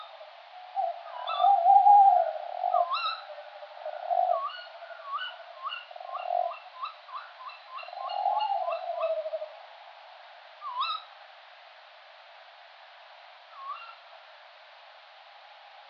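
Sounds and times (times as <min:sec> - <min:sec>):
adult male tawny owl Strix aluco giving territorial advertising call: 0:00.0 - 0:09.6, 0:10.6 - 0:11.1, 0:13.5 - 0:14.0.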